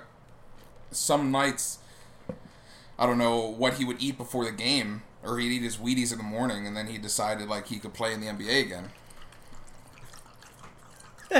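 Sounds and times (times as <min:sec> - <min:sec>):
speech: 0:00.9 - 0:02.4, 0:03.0 - 0:09.0
water poured from a cup for a dog: 0:08.1 - 0:11.3.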